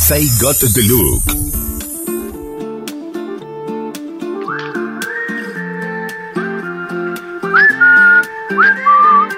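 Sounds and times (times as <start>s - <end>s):
speech: 0.1s - 1.6s
person whistling a tune: 4.5s - 9.3s.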